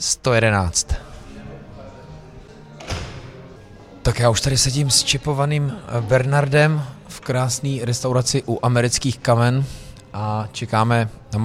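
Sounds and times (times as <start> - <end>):
speech: 0.0 - 1.1, 4.1 - 11.4
steady murmur with faint voices: 0.0 - 11.4
door opening with a solid thud and clunk: 2.8 - 3.5.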